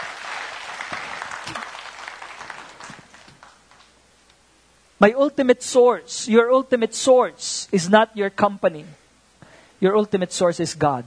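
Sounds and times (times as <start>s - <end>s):
audience applause: 0.0s - 3.9s
speech: 5.0s - 9.0s, 9.8s - 11.0s.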